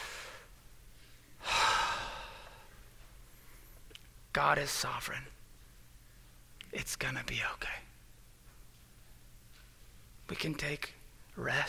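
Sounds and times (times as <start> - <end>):
deep breath: 0.0 - 0.5, 1.1 - 3.8
speech: 4.4 - 5.4, 6.7 - 7.9, 10.3 - 11.6.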